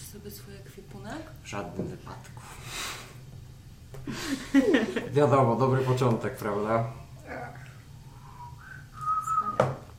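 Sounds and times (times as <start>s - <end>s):
speech: 0.1s - 3.0s, 3.9s - 7.6s
laughter: 4.1s - 5.2s
person whistling a short wavering tune: 8.3s - 9.8s.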